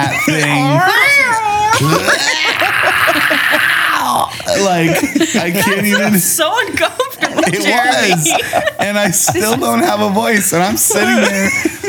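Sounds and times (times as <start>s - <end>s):
voice mimicking a strained yowling dying cat: 0.0s - 4.3s
breathy laughter: 0.0s - 10.1s, 10.9s - 11.8s
speech: 4.6s - 11.8s.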